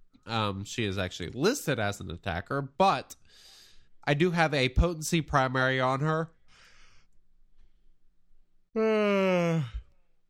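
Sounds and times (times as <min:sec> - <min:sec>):
speech: 0:00.3 - 0:06.4, 0:08.7 - 0:09.8
loud yawn: 0:08.8 - 0:10.0.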